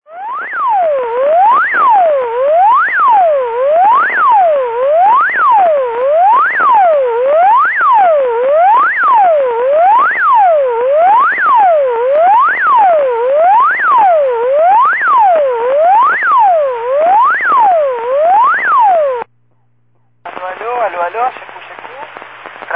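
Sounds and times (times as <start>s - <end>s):
siren: 0.0s - 19.3s.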